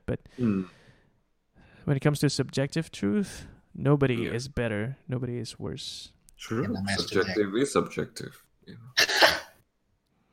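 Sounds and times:
speech: 0.1 - 0.8, 1.9 - 9.3
person sneezing: 9.0 - 9.6.

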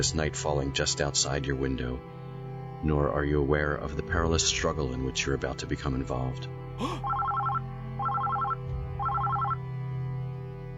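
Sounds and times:
speech: 0.0 - 2.2, 2.8 - 7.1
office telephone ringing with rapid electronic trilling: 7.0 - 9.6.

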